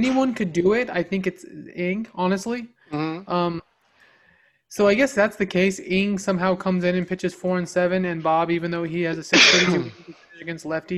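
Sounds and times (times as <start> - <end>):
speech: 0.0 - 3.7, 4.7 - 10.9
person sneezing: 9.3 - 10.1.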